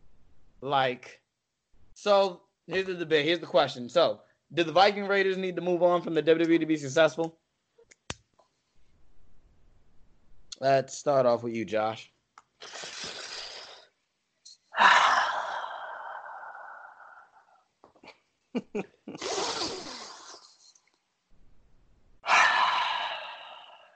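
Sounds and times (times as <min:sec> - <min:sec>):
speech: 0:00.6 - 0:01.2, 0:02.0 - 0:07.4, 0:10.6 - 0:13.0, 0:18.6 - 0:19.5
person's voice imitating heavy mechanical respirator breathing: 0:12.6 - 0:13.9, 0:14.7 - 0:17.6, 0:19.1 - 0:20.7, 0:22.2 - 0:23.9.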